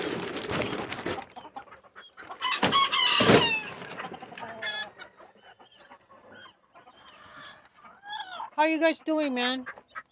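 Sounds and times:
chickens clucking and squawking: 0.0s - 10.1s
speech: 8.6s - 9.8s.

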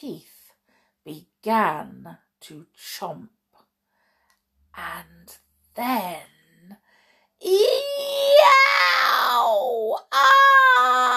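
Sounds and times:
speech: 0.0s - 0.3s, 1.0s - 3.4s, 4.8s - 6.8s, 7.4s - 11.1s
voice acting out a terrible scream in a packed school lunchroom: 7.5s - 11.1s.

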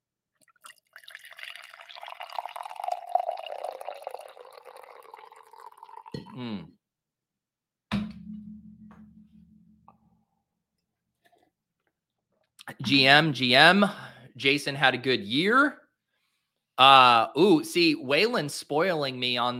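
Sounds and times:
coffee pouring into a mug: 0.4s - 6.2s
speech: 6.2s - 6.8s, 12.8s - 15.8s, 16.8s - 19.5s.

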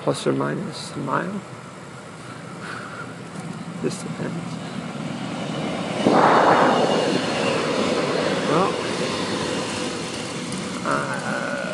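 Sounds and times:
speech: 0.0s - 1.6s, 3.8s - 4.6s
train rushing past: 3.6s - 11.7s
high metallic squeal: 5.4s - 10.4s.

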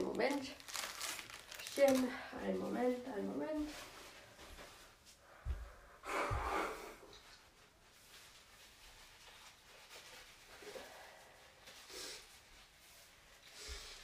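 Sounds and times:
speech: 0.2s - 0.6s, 1.8s - 3.9s
quiet rustling: 1.6s - 5.8s, 7.1s - 14.0s
person blowing their nose: 6.0s - 7.2s, 11.8s - 12.3s.

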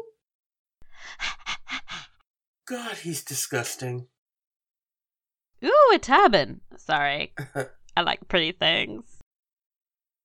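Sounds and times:
heavy labored rasping breathing: 0.8s - 2.2s
speech: 2.7s - 4.2s, 5.6s - 9.2s.

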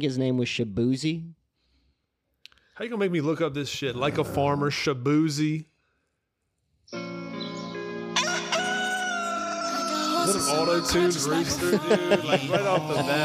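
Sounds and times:
speech: 0.0s - 1.4s, 2.8s - 5.7s, 10.3s - 13.2s
auto-tuned rooster crow: 8.1s - 10.4s
laughter: 8.6s - 13.2s.

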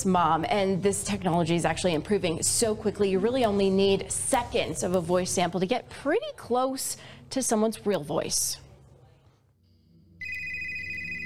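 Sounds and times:
speech: 0.0s - 8.6s
loud electronic telephone ringtone: 10.2s - 11.2s.

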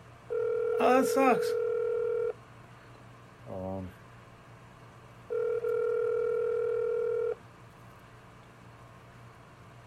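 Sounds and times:
telephone dial tone while calling back: 0.3s - 0.9s, 1.5s - 2.3s, 5.3s - 7.4s
speech: 0.8s - 1.6s.

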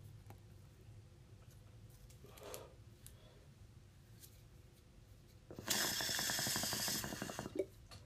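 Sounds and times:
water bubbling through a clogged smoking pipe: 5.5s - 7.7s.

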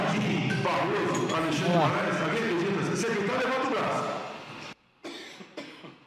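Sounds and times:
speech: 0.1s - 2.5s, 3.0s - 4.2s
man coughing hard and raspy: 5.1s - 6.0s.

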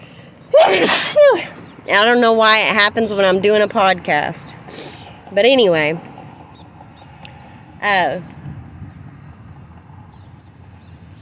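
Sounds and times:
loud sneeze: 0.6s - 1.4s
speech: 0.8s - 4.6s, 5.3s - 6.1s, 7.8s - 8.3s.

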